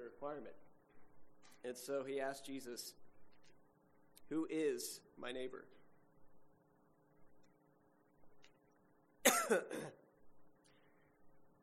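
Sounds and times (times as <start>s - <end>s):
speech: 0.1s - 0.7s, 1.6s - 3.0s, 4.3s - 5.8s, 9.5s - 10.0s
harsh coughing: 9.2s - 10.1s
sharp throat clearing: 9.3s - 10.0s.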